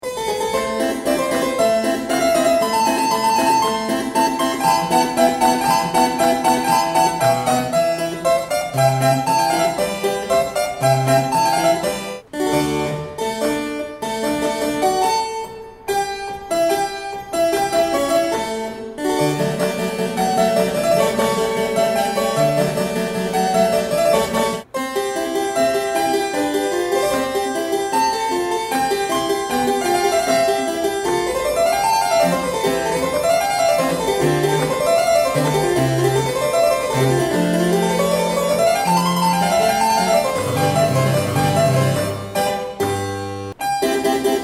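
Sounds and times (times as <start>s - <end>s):
harpsichord: 0.0s - 44.4s.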